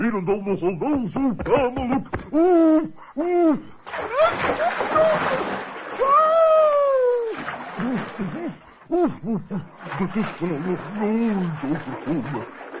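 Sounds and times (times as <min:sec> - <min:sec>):
speech: 0:00.1 - 0:06.4, 0:07.8 - 0:12.6
laughter: 0:00.5 - 0:03.4, 0:07.8 - 0:12.6
water splashing in a bath as an owl is washed: 0:03.8 - 0:08.7, 0:09.8 - 0:12.7.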